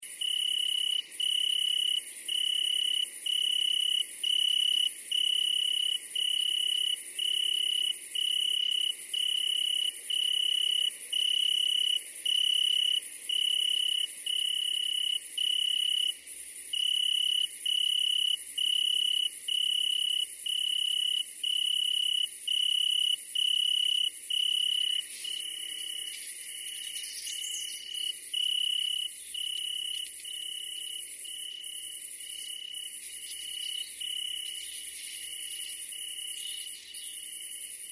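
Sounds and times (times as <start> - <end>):
Italian cricket chirping: 0.0 - 37.9.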